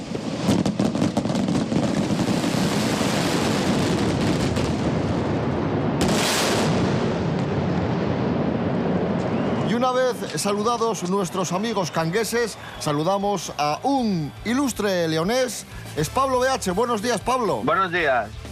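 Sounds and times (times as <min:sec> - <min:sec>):
firework rockets and firecrackers exploding: 0:00.0 - 0:13.5
speech: 0:09.9 - 0:18.4.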